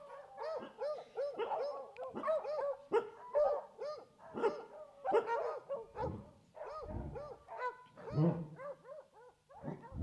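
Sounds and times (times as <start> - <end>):
police dog barking during a test exercise: 0.4 - 10.0.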